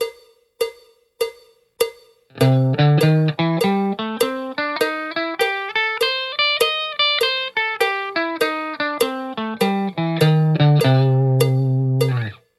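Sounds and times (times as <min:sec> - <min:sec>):
guitar playing swing blues: 0:02.4 - 0:12.4.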